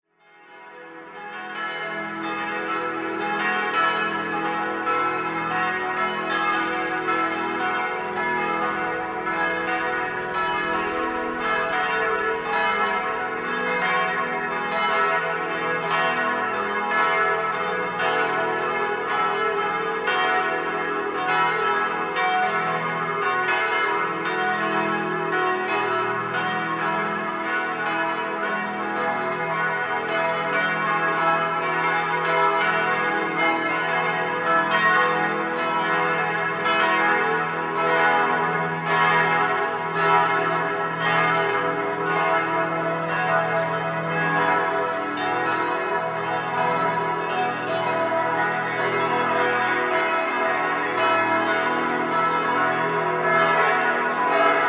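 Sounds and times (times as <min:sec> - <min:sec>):
bells ringing on a square in Graz Mariahilfer: 0:00.2 - 0:54.6.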